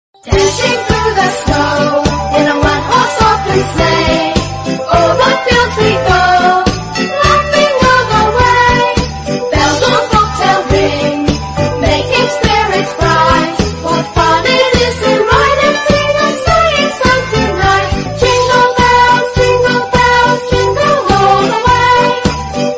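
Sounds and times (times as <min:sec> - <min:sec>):
holiday ringtone melody: 0:00.3 - 0:22.7.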